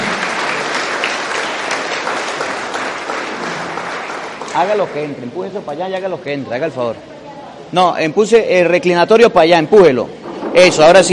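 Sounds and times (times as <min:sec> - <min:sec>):
crowd applauding children: 0:00.0 - 0:05.8
speech: 0:04.6 - 0:07.1, 0:07.7 - 0:11.1.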